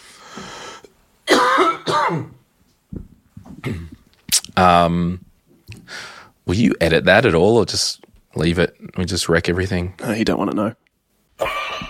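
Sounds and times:
person coughing harshly: 0:01.3 - 0:02.4, 0:03.6 - 0:04.0, 0:11.4 - 0:11.8
throat clearing: 0:03.6 - 0:04.0, 0:11.4 - 0:11.8
speech: 0:04.6 - 0:05.2, 0:05.9 - 0:10.8, 0:11.4 - 0:11.8.

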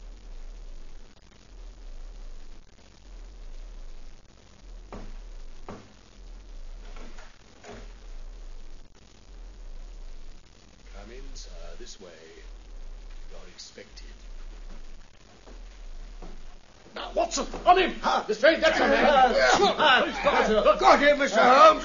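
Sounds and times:
steady low hum and hiss: 0:00.0 - 0:21.8
slow footsteps of a man approaching the front door: 0:04.8 - 0:08.1, 0:14.2 - 0:18.0
speech: 0:11.4 - 0:12.6, 0:13.3 - 0:14.3, 0:17.1 - 0:21.8
laughter: 0:17.9 - 0:21.8.

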